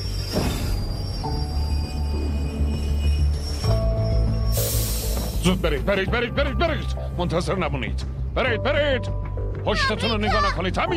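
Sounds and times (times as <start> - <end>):
train wheel squeal: 0.0 - 5.5
train rumbling: 0.0 - 6.0
speech: 5.5 - 10.9.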